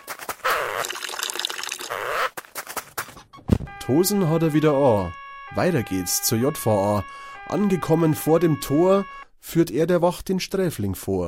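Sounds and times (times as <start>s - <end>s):
steady stream of liquid splashing: 0.4s - 1.9s
person urinating: 0.4s - 2.2s
short trailing splashes and drips: 0.5s - 2.0s
speech: 3.9s - 11.2s.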